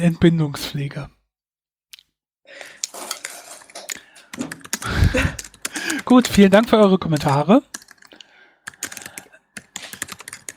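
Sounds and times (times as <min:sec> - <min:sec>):
speech: 0:00.0 - 0:01.2, 0:05.1 - 0:07.8
typing on a computer keyboard: 0:02.9 - 0:10.5.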